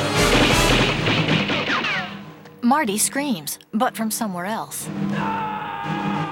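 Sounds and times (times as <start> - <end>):
gunfire in a film scene in a mall parking lot at night: 0.2 - 2.2
speech: 2.7 - 6.1.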